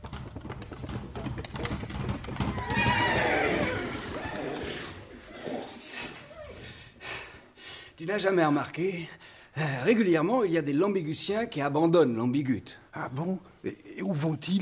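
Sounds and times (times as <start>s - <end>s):
hoof clatter: 0.0s - 7.4s
racehorse neighing: 2.3s - 6.6s
speech: 8.0s - 14.5s.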